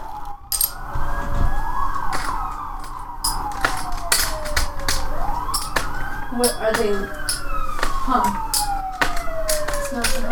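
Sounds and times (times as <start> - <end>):
police siren at a Santa parade in a residential street: 0.0 - 10.3
rumbling street background: 0.0 - 10.3
sharp clicks and knocks: 2.1 - 10.3
speech: 6.4 - 7.2, 8.1 - 8.4.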